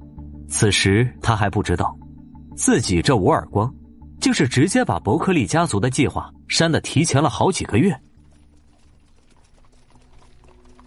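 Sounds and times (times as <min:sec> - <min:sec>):
speech: 0:00.5 - 0:02.0, 0:02.6 - 0:08.1
horse-drawn carriage hooves clip-clopping in a merchant caravan: 0:07.6 - 0:10.8.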